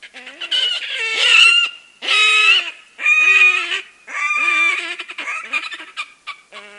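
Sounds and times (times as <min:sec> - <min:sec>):
red-necked grebe calling with harsh wailing and braying notes: 0:00.0 - 0:06.7.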